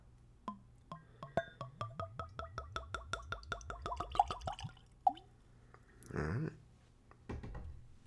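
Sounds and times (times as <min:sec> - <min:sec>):
last drip of liquor: 0:00.5 - 0:05.4
liquor poured from a bottle into a Glencairn tasting glass: 0:01.7 - 0:05.3.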